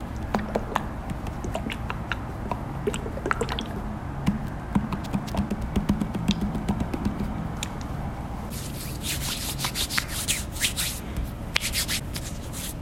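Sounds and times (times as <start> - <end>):
hand sanitizer: 0.1 - 7.8, 8.5 - 11.0, 11.6 - 12.7.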